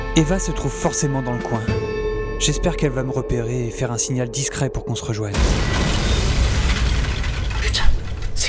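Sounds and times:
speech: 0:00.2 - 0:06.0
dense crackling debris: 0:05.3 - 0:08.4
heavy explosion destroying a building wall about 50 metres away: 0:05.3 - 0:08.4.

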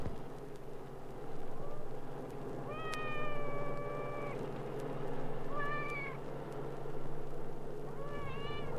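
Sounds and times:
low rumbling hum: 0:00.0 - 0:08.7
cat meowing while waiting for breakfast: 0:02.7 - 0:04.4, 0:05.5 - 0:06.2, 0:08.0 - 0:08.7.

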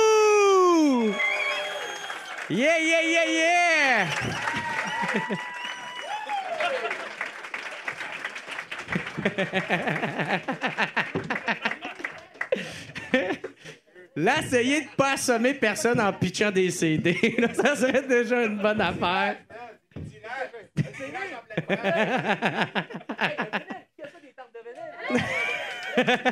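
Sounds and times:
excited shouts: 0:00.0 - 0:07.1
crowd whoops and cheers: 0:00.0 - 0:11.9, 0:25.0 - 0:26.2
crowd applause: 0:00.7 - 0:13.2, 0:25.0 - 0:26.2
speech: 0:02.5 - 0:04.4, 0:05.1 - 0:05.5, 0:09.3 - 0:11.8, 0:14.2 - 0:19.4, 0:21.6 - 0:23.4, 0:26.0 - 0:26.2
laughter: 0:02.5 - 0:13.9, 0:17.0 - 0:19.4, 0:20.8 - 0:24.2, 0:24.8 - 0:26.2.

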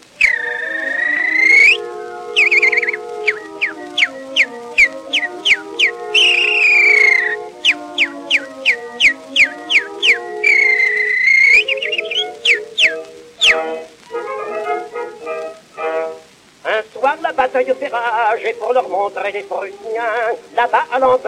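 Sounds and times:
steady sustained musical accompaniment: 0:00.0 - 0:20.6
person whistling chirps in imitation of small birds: 0:00.2 - 0:13.8
speech: 0:17.6 - 0:21.2.

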